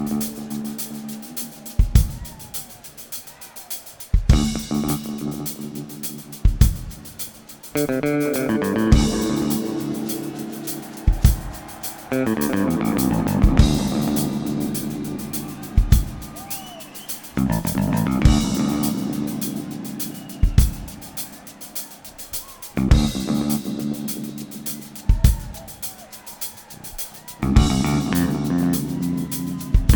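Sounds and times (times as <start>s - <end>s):
bass in a jam: 0.0s - 2.6s, 4.3s - 7.1s, 7.7s - 10.6s, 11.2s - 21.0s, 22.7s - 25.7s, 27.4s - 29.9s
drums in a jam: 0.0s - 29.9s.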